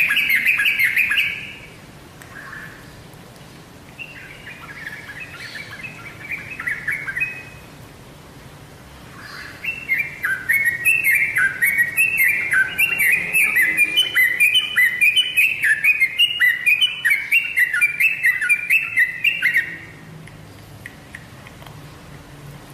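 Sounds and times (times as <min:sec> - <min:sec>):
Oriental magpie-robin song with whistled phrases and high ticks: 0:00.0 - 0:02.8, 0:04.0 - 0:07.6, 0:09.2 - 0:20.0.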